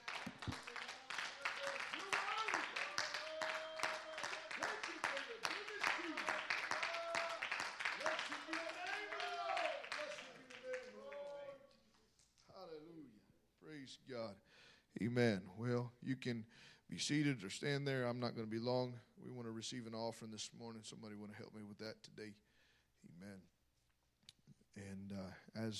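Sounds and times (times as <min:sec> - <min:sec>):
crowd clapping: 0:00.0 - 0:11.8
speech: 0:15.0 - 0:23.6, 0:24.7 - 0:25.7.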